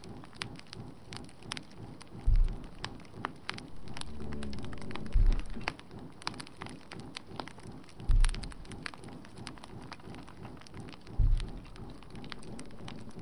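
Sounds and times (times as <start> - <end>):
fireplace crackling with dense popping: 0.0 - 13.2
low rumble: 1.1 - 13.2
heavy thuds: 2.2 - 3.0, 3.6 - 5.8, 8.0 - 8.8, 11.1 - 13.2.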